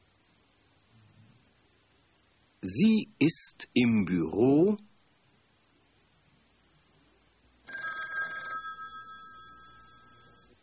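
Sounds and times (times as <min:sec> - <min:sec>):
speech: 0:02.6 - 0:04.9
office telephone bell ringing: 0:07.7 - 0:10.6.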